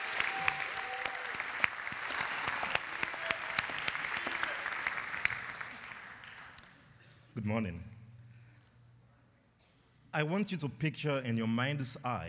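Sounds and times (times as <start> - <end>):
audience applause welcoming a guest speaker at a worship service: 0.0 - 6.6
speech: 7.4 - 7.9, 10.2 - 12.2.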